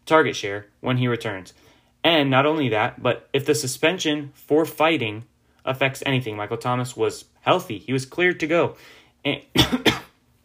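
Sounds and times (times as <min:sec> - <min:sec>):
speech: 0:00.1 - 0:10.0
coughing: 0:09.5 - 0:10.2.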